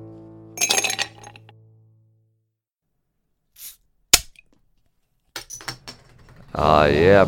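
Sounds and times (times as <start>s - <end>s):
sharp taps on whiskey glasses: 0.6s - 1.4s
whiskey glasses clinking in a toast: 0.6s - 1.5s.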